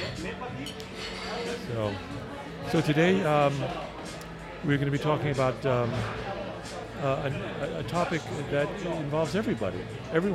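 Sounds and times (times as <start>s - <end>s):
glasses clinking in a toast: 0.0s - 1.6s
murmur of voices: 0.0s - 10.3s
speech: 1.7s - 4.0s, 4.6s - 10.3s.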